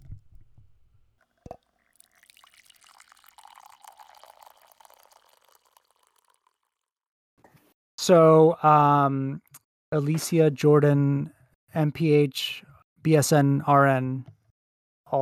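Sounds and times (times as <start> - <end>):
coffee pouring into a cup: 1.2 - 6.8
speech: 8.0 - 14.4, 15.1 - 15.2.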